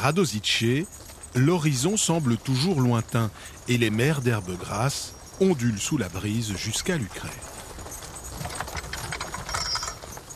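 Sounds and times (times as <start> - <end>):
speech: 0.0 - 7.6
horse hooves clip-clopping: 0.0 - 10.3
horse-drawn wooden cart rattling and rumbling: 0.0 - 10.3.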